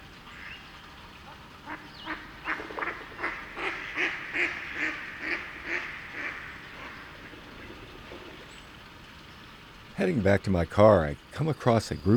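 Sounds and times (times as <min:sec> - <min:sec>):
nervous mallard pair quacking on a pond: 0:01.7 - 0:07.0
speech: 0:10.0 - 0:12.1.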